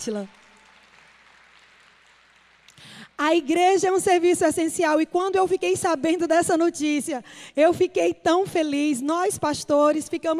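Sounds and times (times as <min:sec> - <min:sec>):
speech: 0:00.0 - 0:00.4, 0:03.2 - 0:10.3
crowd clapping: 0:00.0 - 0:03.0.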